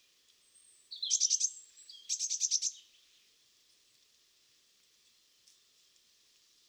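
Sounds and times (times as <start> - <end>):
Eurasian blue tit Cyanistes caeruleus calling: 1.0 - 2.8.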